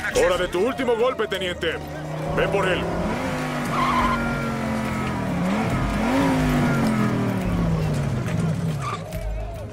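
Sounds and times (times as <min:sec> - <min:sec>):
speech: 0:00.1 - 0:03.1
car engine racing: 0:01.4 - 0:09.7
car tires skidding: 0:01.7 - 0:09.3.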